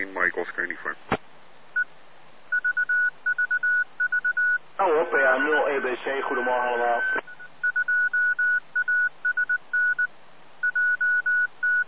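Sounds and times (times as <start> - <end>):
speech: 0.0 - 1.2, 4.8 - 7.2
telephone-style keypad beeps over a radio channel: 2.5 - 4.6, 7.0 - 11.8.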